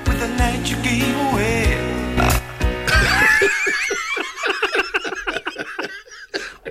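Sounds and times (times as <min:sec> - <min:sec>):
speech: 0:00.2 - 0:01.9
loud deep guttural belch: 0:02.1 - 0:03.2
short rhythmic vocal bursts like giggling laughter: 0:02.9 - 0:06.6.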